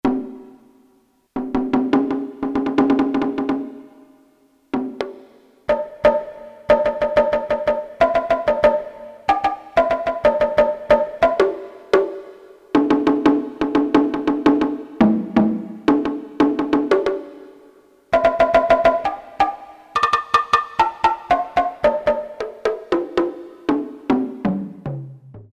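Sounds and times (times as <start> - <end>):
Japanese drums: 0.0 - 25.5.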